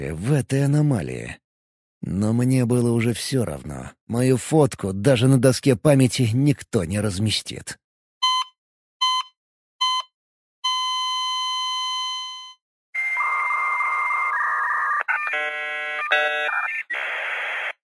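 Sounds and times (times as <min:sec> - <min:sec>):
speech: 0:00.0 - 0:01.4, 0:02.0 - 0:07.8
short beeps: 0:08.2 - 0:12.6
dial-up modem screeching: 0:13.0 - 0:17.8.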